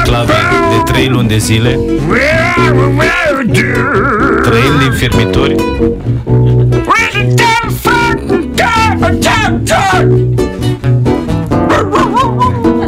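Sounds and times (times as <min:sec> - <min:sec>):
sustained musical tones: 0:00.1 - 0:11.1
speech: 0:00.9 - 0:06.6, 0:09.0 - 0:11.0
dog barking and yipping: 0:11.6 - 0:12.5.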